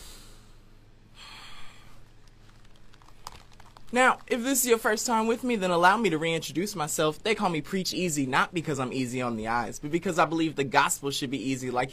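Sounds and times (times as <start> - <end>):
slow deep inhale: 0.0 - 2.0
speech: 3.9 - 11.9.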